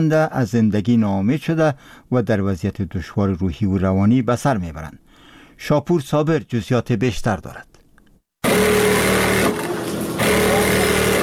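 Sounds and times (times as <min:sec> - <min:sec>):
speech: 0:00.0 - 0:05.0, 0:05.6 - 0:07.7
electric sewing machines whirring: 0:08.4 - 0:11.2.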